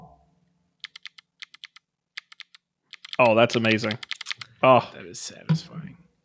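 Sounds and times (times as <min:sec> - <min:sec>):
mechanical keyboard with extra-loud switches being typed on: 0:00.8 - 0:04.5
speech: 0:03.2 - 0:06.0.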